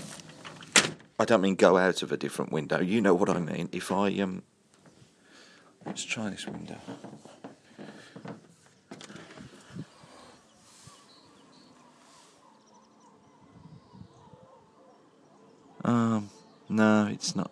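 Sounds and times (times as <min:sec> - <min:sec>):
bumps and rustles: 0:00.0 - 0:01.2, 0:04.7 - 0:11.3
speech: 0:01.2 - 0:04.5, 0:05.8 - 0:07.4, 0:15.9 - 0:17.5
birds chirping and twittering outdoors heard through a window: 0:04.2 - 0:17.5.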